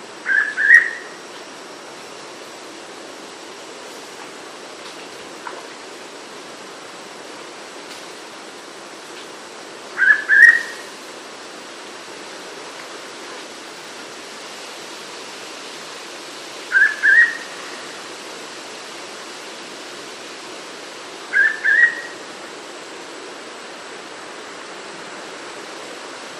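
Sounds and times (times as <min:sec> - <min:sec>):
steady hiss: 0:00.0 - 0:26.3
hooded pitta Pitta sordida giving whistled double note calls: 0:00.3 - 0:01.2, 0:10.0 - 0:10.9, 0:16.7 - 0:17.5, 0:21.3 - 0:22.2.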